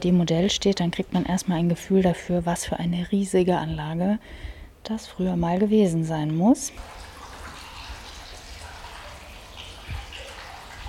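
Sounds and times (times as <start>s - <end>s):
speech: 0.0s - 7.0s
running water splashing and bubbling from a garden fountain: 6.8s - 10.8s.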